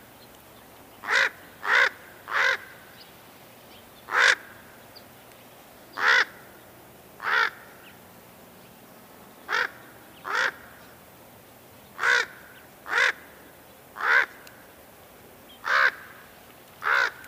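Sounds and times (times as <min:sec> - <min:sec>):
background hiss: 0:00.0 - 0:17.2
raven cawing: 0:01.0 - 0:02.9, 0:04.1 - 0:04.8, 0:06.0 - 0:06.6, 0:07.2 - 0:07.8, 0:09.5 - 0:10.8, 0:12.0 - 0:14.7, 0:15.6 - 0:17.2.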